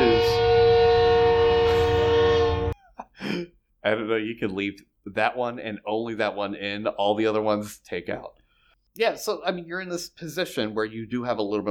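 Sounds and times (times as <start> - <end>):
passing train horn blast: 0.0 - 2.8
speech: 3.8 - 8.4, 9.0 - 11.7.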